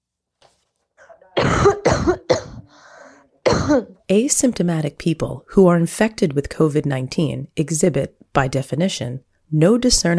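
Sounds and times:
person coughing harshly: 1.0 - 4.0
speech: 3.7 - 10.1.

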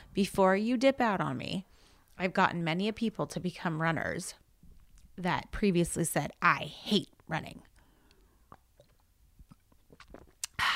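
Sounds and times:
speech: 0.2 - 4.4, 5.2 - 7.7
person sipping beer: 7.8 - 10.7
breathy slurp or exhale: 8.4 - 10.7.

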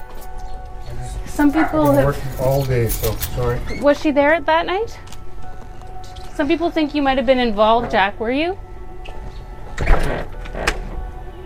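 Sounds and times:
speech: 1.4 - 5.1, 6.4 - 8.6
house door closing: 9.0 - 11.1.

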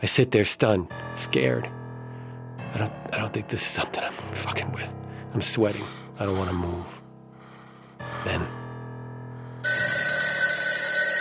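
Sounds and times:
speech: 0.0 - 1.8, 2.7 - 7.0, 8.0 - 8.6
phone ringing with electronic bell tone: 9.6 - 11.2.

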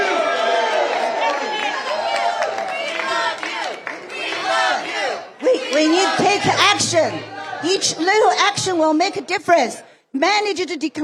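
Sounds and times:
large crowd cheering and shouting in thanks: 0.0 - 8.8
speech: 6.4 - 11.0.

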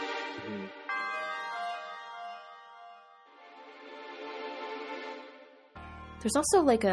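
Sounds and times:
chiming bells in game shrine music: 0.0 - 6.9
speech: 6.2 - 6.9.

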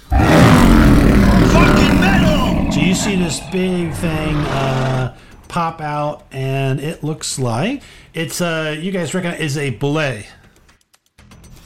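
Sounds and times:
monster roar: 0.0 - 5.4
speech: 3.0 - 10.4.

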